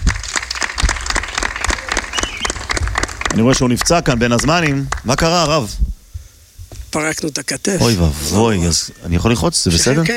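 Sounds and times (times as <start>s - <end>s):
crowd applauding: 0.0s - 5.4s
speech: 3.4s - 5.9s, 6.9s - 10.1s.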